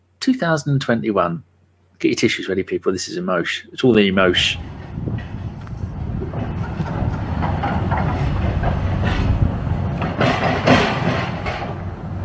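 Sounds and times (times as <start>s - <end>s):
speech: 0.2s - 4.7s
train rumbling past at a train station: 4.1s - 12.2s
rhythmic clatter of train wheels over the rails: 4.2s - 12.2s.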